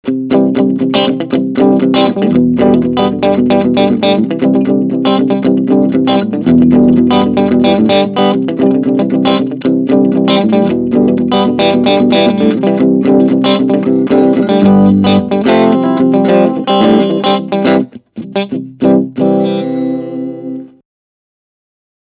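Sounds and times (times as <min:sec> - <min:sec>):
clean single-coil electric guitar playing country: 0:00.0 - 0:20.8.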